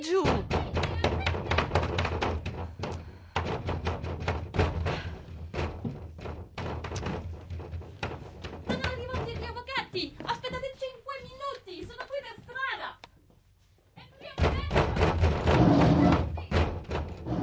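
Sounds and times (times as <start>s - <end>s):
pounding on a door: 0.1s - 10.0s, 14.4s - 17.3s.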